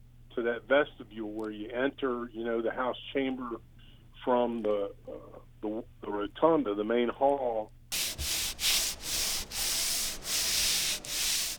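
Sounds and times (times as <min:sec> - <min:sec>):
speech: 0:00.4 - 0:08.3
sandpaper rasping as a furniture finisher hand-sands nearly 100-year-old wooden delegate desks: 0:07.9 - 0:11.5.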